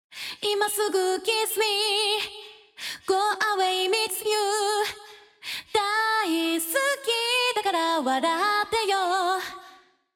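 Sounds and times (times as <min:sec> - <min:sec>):
vocals: 0:00.1 - 0:10.1.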